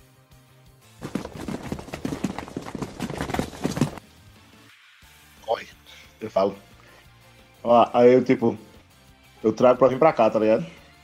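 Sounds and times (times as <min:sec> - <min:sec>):
many overlapping footsteps of a group hurrying down stairs: 0:01.0 - 0:04.0
speech: 0:06.2 - 0:06.7, 0:07.6 - 0:08.7, 0:09.4 - 0:10.8.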